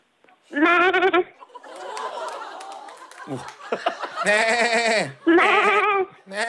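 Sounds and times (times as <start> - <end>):
phone caller imitating a goat bleat: 0.5 - 1.3, 4.2 - 6.4
snickering laughter: 1.4 - 6.4
speech: 3.3 - 6.4.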